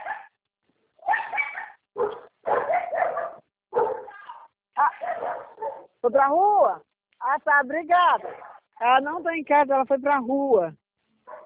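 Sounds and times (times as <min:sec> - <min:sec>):
dogs barking and yelping: 0:00.0 - 0:00.4, 0:01.0 - 0:06.0, 0:08.2 - 0:08.7, 0:11.2 - 0:11.4
speech: 0:06.1 - 0:10.8.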